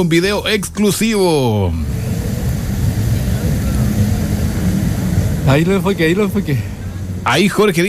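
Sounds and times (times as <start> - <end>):
speech: 0.0 - 2.1, 5.5 - 7.8
F-16 fighter jets roaring overhead during exercises: 1.4 - 7.8.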